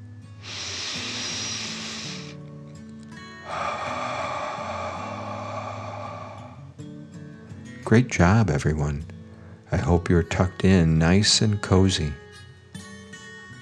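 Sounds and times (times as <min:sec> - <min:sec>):
deep breath in and out: 0:00.4 - 0:02.4, 0:03.3 - 0:06.8
soft music: 0:02.4 - 0:13.6
speech: 0:07.9 - 0:12.2.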